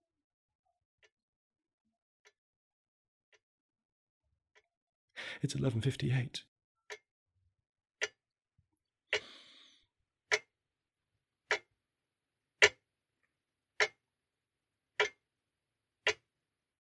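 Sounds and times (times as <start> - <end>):
speech: 5.4 - 6.5
clock ticking: 11.5 - 11.7, 12.6 - 12.8, 15.0 - 15.2, 16.0 - 16.3.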